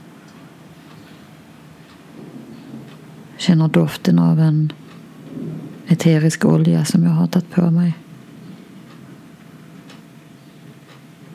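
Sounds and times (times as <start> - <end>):
thunder rumbling in the sky: 2.1 - 7.0
speech: 3.4 - 4.8, 5.9 - 8.0.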